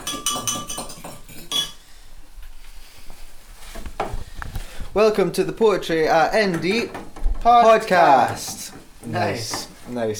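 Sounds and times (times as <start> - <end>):
spoon stirring vegetable stock in a pot: 0.0 - 1.8
speech: 5.0 - 10.1.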